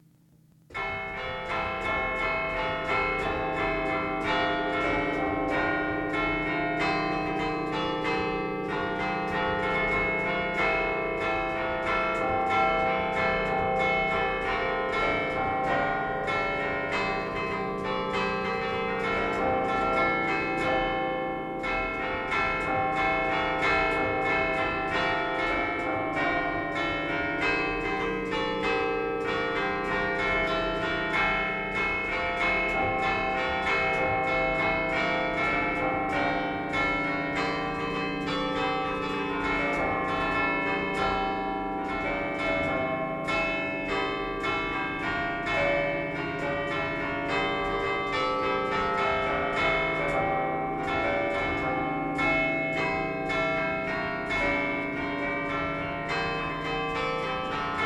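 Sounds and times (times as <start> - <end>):
San Cipriano church bells in Liguria Genova: 0.8 - 57.8.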